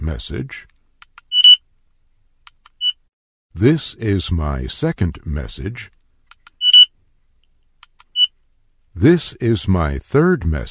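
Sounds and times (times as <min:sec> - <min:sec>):
speech: 0:00.0 - 0:00.7, 0:03.6 - 0:06.0, 0:09.0 - 0:10.6
electronic beeps from a voice recorder: 0:01.3 - 0:01.6, 0:06.6 - 0:06.9.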